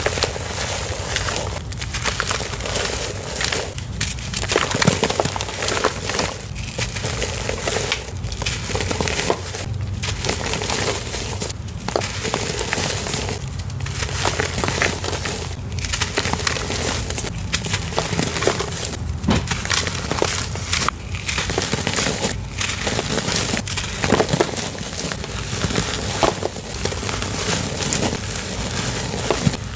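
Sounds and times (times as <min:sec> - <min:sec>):
glittery black powder crushed and crumbled: 0:00.0 - 0:29.7.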